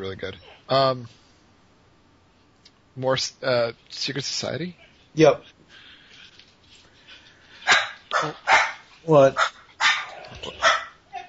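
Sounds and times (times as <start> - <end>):
speech: 0.0 - 1.2, 3.0 - 5.6, 8.2 - 9.5, 10.4 - 10.7
dog barking loudly: 7.6 - 11.2.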